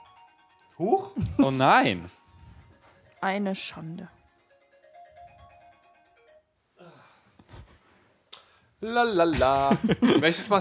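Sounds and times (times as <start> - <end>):
phone ringtone electronic melody: 0.0 - 6.5
speech: 0.8 - 2.2, 3.2 - 4.2, 8.8 - 10.5
laughter: 1.2 - 1.8, 9.3 - 10.5
breathy gasps: 6.8 - 7.6.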